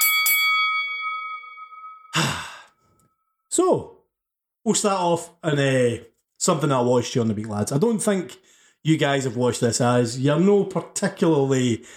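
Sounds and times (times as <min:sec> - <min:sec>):
bell ringing: 0:00.0 - 0:02.6
breathy exhale: 0:02.2 - 0:02.8
speech: 0:03.6 - 0:04.0, 0:04.6 - 0:11.9.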